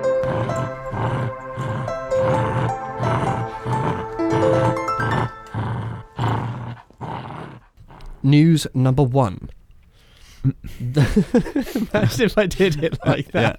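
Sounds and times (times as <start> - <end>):
dog growling and snarling aggressively: 0.1 - 8.3
speech: 8.3 - 9.5, 10.5 - 13.5
laughter: 10.7 - 13.5.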